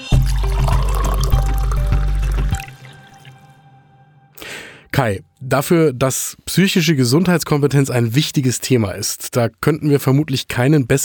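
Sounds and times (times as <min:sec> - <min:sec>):
still water pouring into a glass in a studio: 0:00.1 - 0:03.6
speech: 0:05.0 - 0:11.0.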